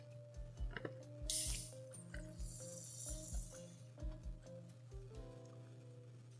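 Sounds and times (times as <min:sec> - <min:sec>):
low rhythmic thumping: 0:00.0 - 0:06.3
can of Guinness beer being opened: 0:01.3 - 0:01.8, 0:02.5 - 0:03.5.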